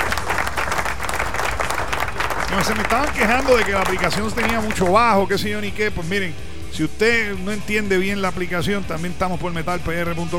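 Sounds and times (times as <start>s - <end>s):
crowd applause: 0.0s - 5.2s
speech: 2.5s - 10.3s.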